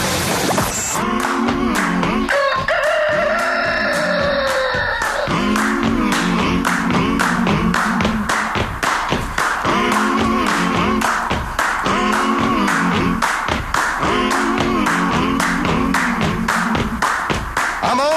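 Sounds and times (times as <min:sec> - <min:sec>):
rhythmic sharp tapping beats: 0:01.0 - 0:18.1
rooster crowing: 0:02.3 - 0:05.3.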